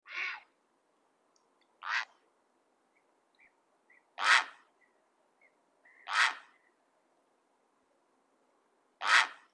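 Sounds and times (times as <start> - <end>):
grey heron call: 4.2 - 4.6, 6.0 - 6.6, 9.0 - 9.4.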